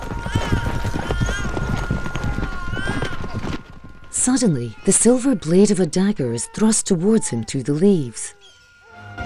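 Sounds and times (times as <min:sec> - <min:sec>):
riderless horse hooves galloping: 0:00.0 - 0:06.7
speech: 0:04.2 - 0:08.4.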